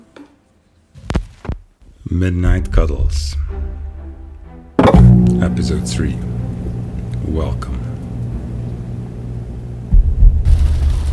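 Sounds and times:
heavy heartbeat thumps: 1.9 - 5.6, 6.2 - 11.1
speech: 2.1 - 3.6, 5.3 - 6.4, 7.3 - 7.8.

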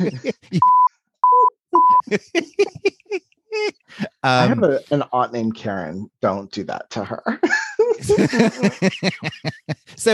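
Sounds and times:
laughter: 0.0 - 0.6, 1.9 - 4.2, 7.4 - 10.1
speech: 0.0 - 0.8, 2.1 - 2.4, 4.2 - 10.1
censor bleeps: 0.6 - 2.0.

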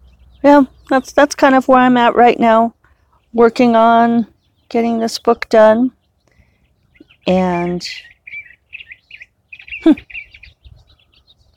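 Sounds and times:
speech: 0.4 - 6.0, 7.2 - 8.1, 9.8 - 10.2
curved-bill thrasher singing spring mating song: 6.8 - 11.5.

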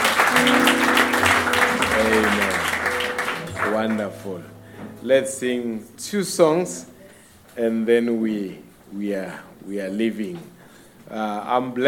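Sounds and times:
crowd clapping: 0.0 - 4.5
speech: 3.8 - 6.9, 7.6 - 10.5, 11.1 - 11.8.

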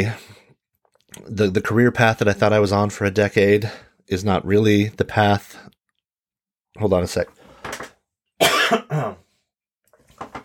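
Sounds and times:
speech: 0.0 - 0.2, 1.2 - 5.8, 6.8 - 7.8, 8.7 - 9.2
throat clearing: 8.4 - 9.2.

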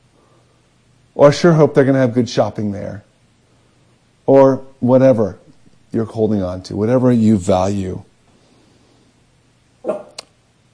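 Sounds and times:
speech: 1.2 - 3.1, 4.3 - 8.1
faint dog bark: 9.8 - 10.2.

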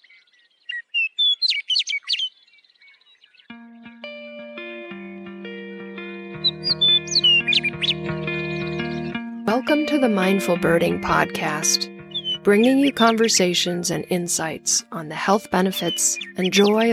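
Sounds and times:
Western Meadowlark song: 0.0 - 3.6, 6.4 - 9.2, 12.0 - 13.1, 15.8 - 16.9
steady sustained music tones: 3.5 - 16.9
speech: 9.6 - 16.9.

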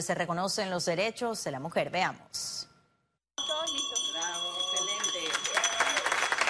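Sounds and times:
speech: 0.0 - 2.7
ceremonial bell ringing at the Panama Stock Exchange: 3.4 - 6.4
crowd clapping and cheering: 5.0 - 6.4.

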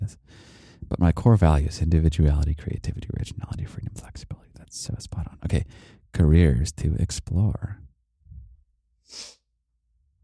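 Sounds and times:
speech: 0.9 - 7.8, 9.1 - 9.4
sharp nasal sniffle or stifled sneeze: 9.1 - 9.4.

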